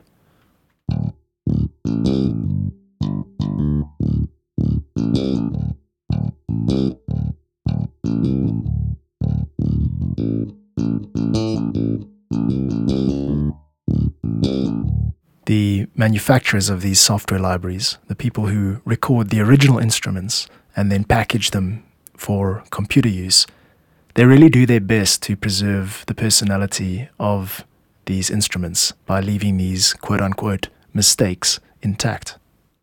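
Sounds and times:
bass guitar strings rattling against the frets: 0.9s - 15.1s
bass guitar playing short plucked notes: 0.9s - 15.2s
speech: 15.5s - 23.6s, 24.2s - 32.4s.

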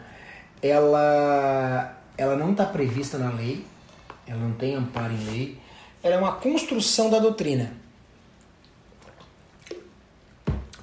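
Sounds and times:
speech: 0.6s - 7.8s
person sipping water: 8.5s - 10.8s
loud gulp of water: 9.0s - 10.8s.

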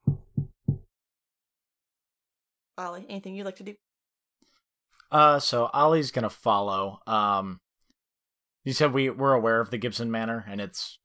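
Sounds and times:
firm hollow knocks on a door: 0.0s - 0.9s
speech: 2.8s - 3.9s, 5.1s - 7.6s, 8.6s - 11.0s.

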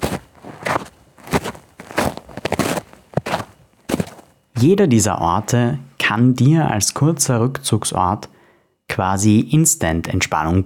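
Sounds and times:
shoes crunching through freshly fallen snow in icy cold: 0.0s - 4.4s
speech: 4.6s - 10.6s.

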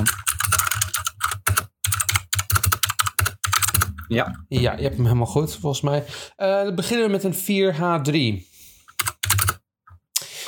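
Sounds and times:
computer keyboard typing: 0.0s - 4.3s, 8.9s - 9.6s
speech: 4.1s - 8.5s.

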